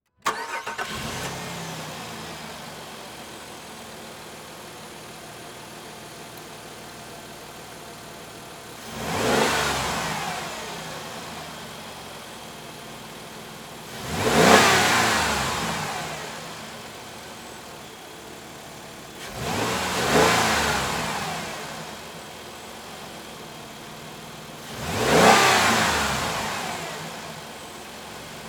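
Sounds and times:
Jeep Commander engine starting, revving and switching off: 0.2 - 28.4.

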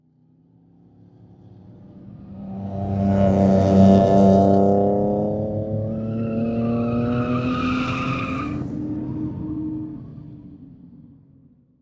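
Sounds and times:
muffled race car driving by between cement and metal: 1.4 - 10.6.

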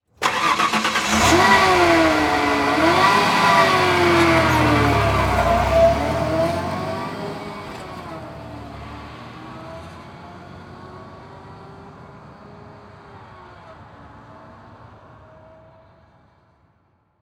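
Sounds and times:
Ford Ranger truck starting and driving off slowly: 0.2 - 13.4.

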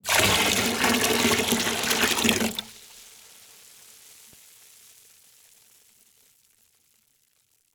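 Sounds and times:
water pouring fast into water in a plastic bucket: 0.0 - 2.8.

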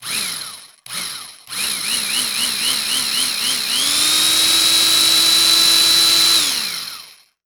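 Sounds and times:
industrial electric saw pulsing: 0.0 - 7.3.

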